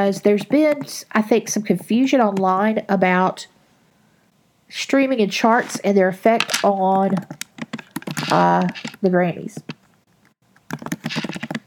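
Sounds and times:
speech: 0:00.0 - 0:03.5, 0:04.7 - 0:07.4, 0:08.2 - 0:09.8
typing on a computer keyboard: 0:07.1 - 0:09.0, 0:10.6 - 0:11.6.

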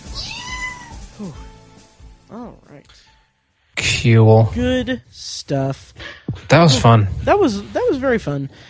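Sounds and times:
cat meowing: 0:00.1 - 0:01.0
speech: 0:01.2 - 0:01.5, 0:02.3 - 0:03.2, 0:03.8 - 0:08.6.

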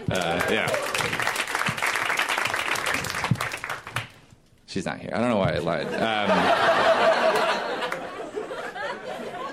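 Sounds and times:
audience applause: 0:00.0 - 0:04.2
speech: 0:00.1 - 0:00.9, 0:04.7 - 0:07.6
laughter: 0:05.6 - 0:09.5.

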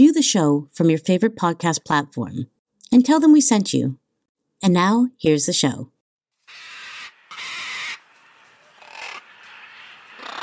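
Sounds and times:
speech: 0:00.0 - 0:04.0, 0:04.6 - 0:05.9
scarlet macaw screeching: 0:06.4 - 0:10.4.

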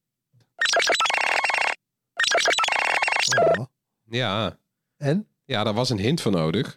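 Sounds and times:
bright melodic smartphone ringtone: 0:00.6 - 0:03.6
speech: 0:04.1 - 0:06.7.

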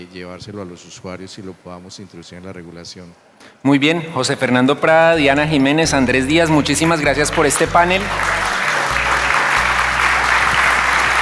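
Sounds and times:
speech: 0:00.0 - 0:08.5
audience applause: 0:06.3 - 0:11.2.

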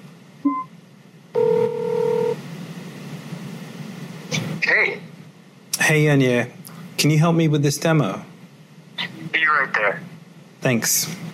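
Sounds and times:
low hum: 0:00.0 - 0:11.3
electronic phone chirp: 0:00.5 - 0:00.7
two-tone phone ringback tone: 0:01.4 - 0:02.4
speech: 0:05.9 - 0:08.3, 0:09.6 - 0:11.3.

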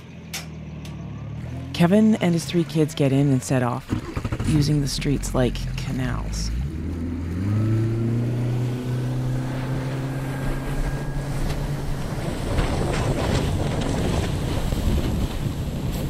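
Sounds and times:
pontoon boat motor droning low: 0:00.0 - 0:15.8
speech: 0:01.8 - 0:06.6
hurricane-force wind roaring around a pontoon boat on flooded streets: 0:07.4 - 0:16.0.

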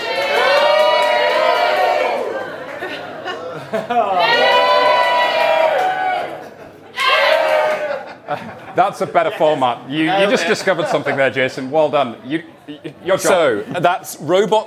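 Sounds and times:
audience cheering and whooping: 0:00.0 - 0:03.0, 0:03.9 - 0:08.3
laughter: 0:02.1 - 0:04.6, 0:06.3 - 0:11.7
speech: 0:03.8 - 0:04.2, 0:08.8 - 0:14.6.

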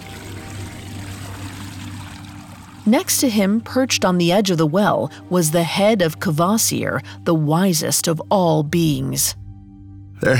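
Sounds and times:
green water swirling and churning in a pool in a chamber: 0:00.0 - 0:02.9
speech: 0:02.9 - 0:09.4, 0:10.2 - 0:10.3.

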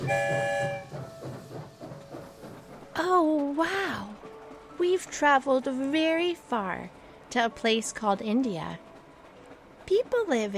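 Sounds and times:
train horn blaring a loud chord: 0:00.0 - 0:01.0
train wheels clattering rolling out of a tunnel: 0:00.0 - 0:10.5
speech: 0:00.1 - 0:00.4, 0:03.0 - 0:04.1, 0:04.8 - 0:08.8, 0:09.9 - 0:10.5.

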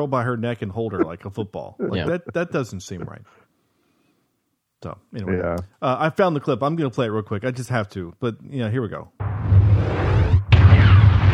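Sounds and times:
speech: 0:00.0 - 0:03.4, 0:04.8 - 0:09.3
rumbling cinematic explosion with heavy low-end roar: 0:09.2 - 0:11.3.

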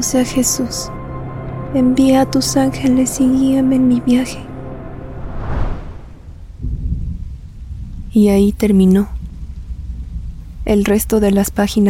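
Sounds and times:
speech: 0:00.0 - 0:01.0, 0:01.7 - 0:04.5, 0:08.2 - 0:09.2, 0:10.7 - 0:11.8
deep rumbling thunder: 0:05.1 - 0:11.3
steady rain falling outdoors: 0:06.2 - 0:11.8.

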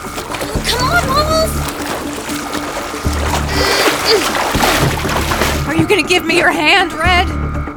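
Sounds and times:
Zodiac inflatable boat dropped into the water: 0:00.0 - 0:06.8
speech: 0:05.8 - 0:07.4.

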